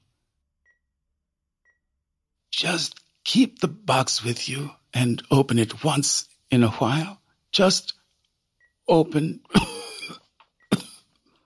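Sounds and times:
speech: 0:02.6 - 0:08.0, 0:08.9 - 0:09.7
woman coughing: 0:09.5 - 0:11.1.

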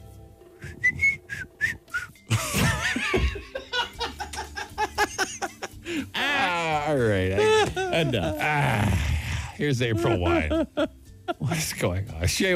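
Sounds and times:
person whistling short breathy notes: 0:00.6 - 0:02.3
bursts of loud laughter: 0:02.3 - 0:11.8
speech: 0:08.0 - 0:12.5.

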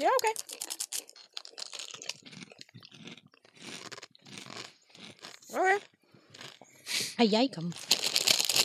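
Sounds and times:
speech: 0:00.0 - 0:00.7, 0:07.2 - 0:07.9
crunching on dry uncooked ramen snacks: 0:00.0 - 0:06.7, 0:07.6 - 0:08.6.

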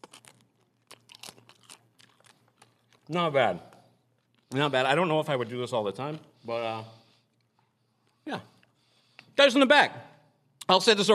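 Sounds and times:
crunching food while chewing: 0:00.0 - 0:05.5
speech: 0:03.1 - 0:03.7, 0:04.5 - 0:07.0, 0:08.3 - 0:08.5, 0:09.4 - 0:10.1, 0:10.7 - 0:11.1.

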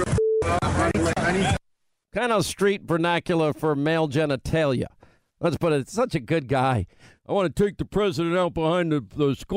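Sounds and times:
censor bleep tone: 0:00.1 - 0:00.7
speech: 0:01.3 - 0:09.5
man speaking loudly: 0:02.1 - 0:09.5.

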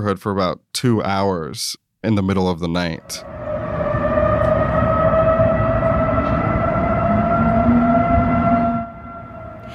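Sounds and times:
speech: 0:00.0 - 0:03.3
hacked outdoor emergency warning sirens wailing in Dallas: 0:03.0 - 0:09.7.

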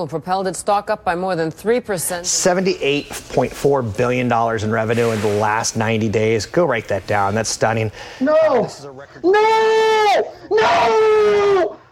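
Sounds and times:
speech: 0:00.0 - 0:11.8
man screaming: 0:08.2 - 0:11.9.

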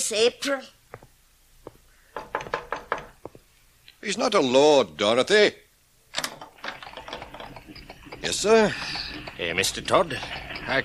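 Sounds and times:
speech: 0:00.1 - 0:00.8, 0:04.0 - 0:05.6, 0:08.2 - 0:10.8
visitor knocking on a house door: 0:02.1 - 0:03.4.

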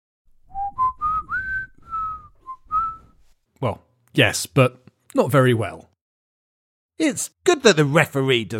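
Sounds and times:
person whistling a short wavering tune with lips: 0:00.5 - 0:03.2
speech: 0:03.6 - 0:05.9, 0:07.0 - 0:08.5.

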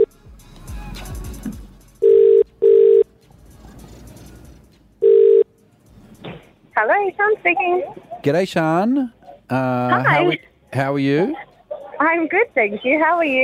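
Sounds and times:
telephone ringback tones of an outgoing call: 0:02.0 - 0:03.0, 0:05.0 - 0:05.5
speech: 0:06.8 - 0:13.4.

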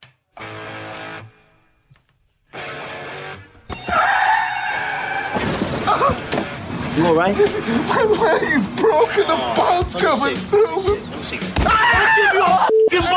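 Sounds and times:
staged car crash squealing tones: 0:03.8 - 0:06.9
speech: 0:07.0 - 0:13.1
laughter: 0:07.2 - 0:09.8.

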